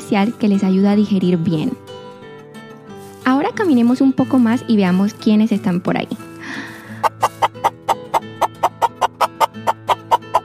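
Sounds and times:
speech: 0:00.1 - 0:01.8, 0:03.6 - 0:07.7
chickens clucking: 0:06.6 - 0:10.4.

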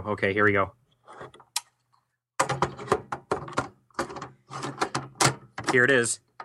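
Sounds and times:
speech: 0:00.0 - 0:00.8, 0:05.7 - 0:06.3
plastic NES game cartridge scraping and squeaking out of an NES console: 0:01.0 - 0:01.5, 0:04.1 - 0:05.8.

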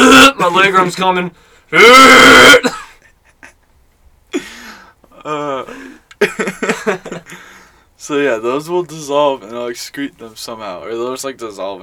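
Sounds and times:
speech: 0:00.5 - 0:02.8, 0:08.0 - 0:11.8
raspy gurgling throat clearing: 0:01.8 - 0:03.0
loud harsh cough: 0:02.3 - 0:03.1.

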